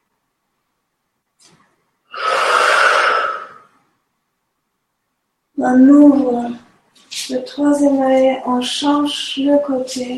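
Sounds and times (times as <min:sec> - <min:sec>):
person breathing during a breathing exercise: 0:02.1 - 0:03.8
speech: 0:05.6 - 0:10.1.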